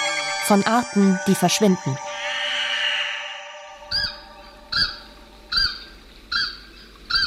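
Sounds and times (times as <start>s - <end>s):
speech: 0.5s - 2.1s
bird's goose-like honking call: 2.2s - 7.2s.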